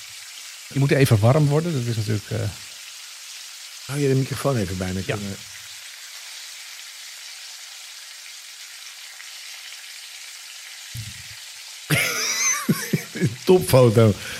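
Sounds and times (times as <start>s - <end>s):
sardines sizzling in a frying pan: 0.0s - 14.3s
speech: 0.7s - 2.7s, 3.9s - 5.6s, 13.2s - 14.3s
low thumps: 11.0s - 11.3s
laughter: 11.9s - 13.9s.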